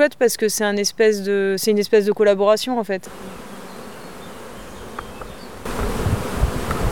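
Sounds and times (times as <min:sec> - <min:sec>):
speech: 0:00.0 - 0:03.4
honeybees buzzing at work: 0:03.0 - 0:06.9.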